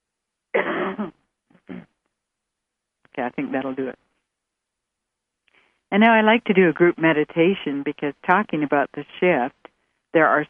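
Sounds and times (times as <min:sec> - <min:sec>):
loud rough cough: 0:00.6 - 0:01.1
hacking throat clearing: 0:00.6 - 0:01.9
speech: 0:00.9 - 0:01.2, 0:03.2 - 0:04.0, 0:05.9 - 0:10.4.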